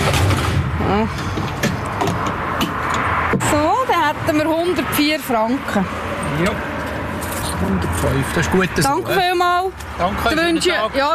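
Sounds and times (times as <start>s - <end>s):
traffic and car noise at a full-service petrol station forecourt: 0.0s - 11.1s
speech: 0.9s - 1.2s, 3.6s - 6.7s, 7.6s - 11.1s.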